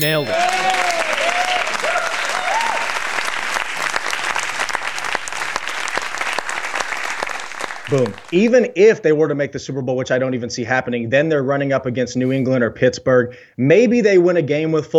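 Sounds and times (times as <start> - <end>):
speech: 0.0 - 0.5, 7.9 - 14.9
loud steady applause and cheering as a correct-answer sound effect: 0.0 - 8.6.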